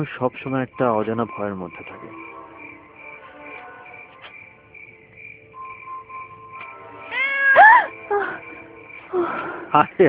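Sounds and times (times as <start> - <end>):
speech: 0.0 - 2.3, 9.7 - 10.0
cat meowing: 7.1 - 7.9.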